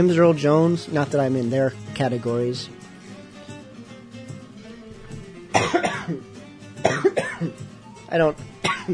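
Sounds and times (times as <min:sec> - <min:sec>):
speech: 0:00.0 - 0:02.8, 0:05.6 - 0:06.3, 0:07.4 - 0:08.9
harsh hacking coughing fit: 0:05.5 - 0:07.6, 0:08.6 - 0:08.9.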